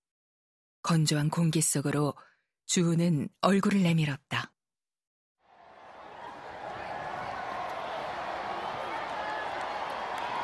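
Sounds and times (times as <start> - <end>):
speech: 0.9 - 4.5
large crowd roaring and cheering: 5.4 - 10.4
scattered claps in a crowd: 5.5 - 10.4
shouts in a crowd: 5.5 - 10.4.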